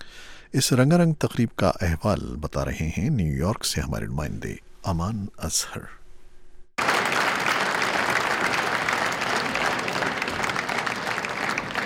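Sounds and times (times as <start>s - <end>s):
speech: 0.5s - 6.0s
audience applause opening a Sufi music concert in the United Nations General Assembly Hall in New York: 6.8s - 11.8s.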